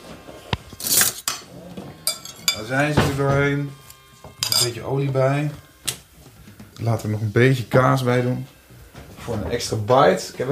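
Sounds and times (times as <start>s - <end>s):
spoon and cutlery clattering in a kitchen: 0.8s - 3.2s, 4.4s - 4.8s
speech: 2.7s - 3.8s, 4.6s - 5.6s, 6.8s - 8.6s, 9.2s - 10.5s.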